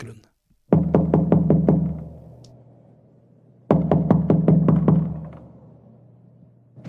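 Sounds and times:
firm knocking on a wooden door: 0.7s - 2.2s, 3.7s - 5.5s.

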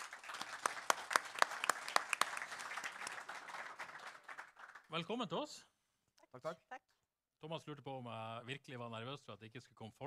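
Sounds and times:
audience applauding: 0.0s - 5.1s
speech: 4.9s - 5.7s, 6.3s - 10.0s.

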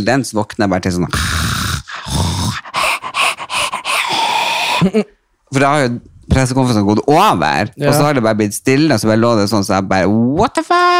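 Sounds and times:
speech: 0.0s - 1.5s, 4.8s - 10.9s
person imitating heavy rapid panting: 1.1s - 5.1s.

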